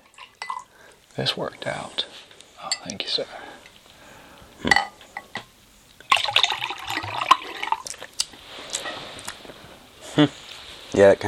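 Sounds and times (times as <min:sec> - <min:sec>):
coffee poured into a carbonated lemon drink: 0:00.0 - 0:01.6, 0:04.8 - 0:09.5
sharp glassy clink: 0:00.2 - 0:00.7, 0:02.7 - 0:03.0, 0:04.7 - 0:05.5
speech: 0:01.2 - 0:02.1, 0:02.8 - 0:03.4, 0:10.2 - 0:10.4, 0:11.0 - 0:11.2.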